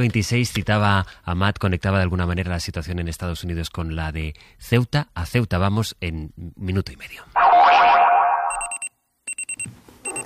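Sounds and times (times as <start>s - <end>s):
speech: 0.0s - 7.8s
springy twang: 7.4s - 8.8s
electronic alarm clock beeping: 7.4s - 10.2s.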